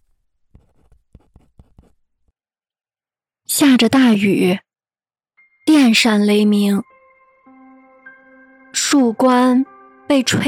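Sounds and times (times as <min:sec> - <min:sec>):
pen scratching across paper while taking notes: 0:00.5 - 0:02.0
speech: 0:03.5 - 0:04.6, 0:05.6 - 0:06.9, 0:08.9 - 0:10.4.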